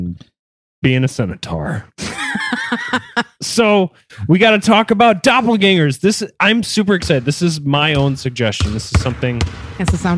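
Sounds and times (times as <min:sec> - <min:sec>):
speech: 0:00.2 - 0:10.1
laughter: 0:02.0 - 0:03.8
basketball bouncing: 0:07.0 - 0:10.1.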